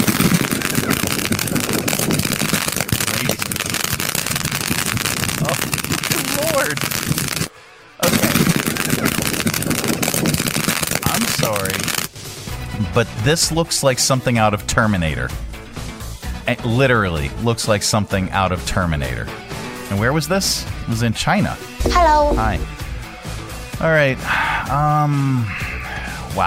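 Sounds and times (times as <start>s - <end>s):
fireworks fired by a drone and a robot dog in a mock firefight in China: 0.0s - 12.4s
speech: 13.0s - 15.5s, 16.5s - 22.8s, 23.8s - 25.6s.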